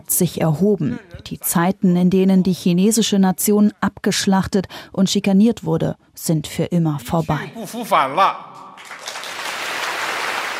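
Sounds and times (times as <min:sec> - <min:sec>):
speech: 0:00.0 - 0:08.6
large crowd applauding at a party anniversary celebration: 0:08.8 - 0:10.5.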